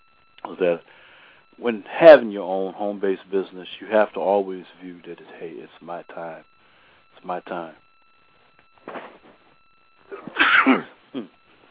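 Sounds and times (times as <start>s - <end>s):
speech: 0.6s - 1.0s, 1.6s - 6.5s, 7.2s - 7.8s, 10.6s - 11.4s
breathy exhale: 0.9s - 1.5s
sneeze: 10.1s - 11.3s.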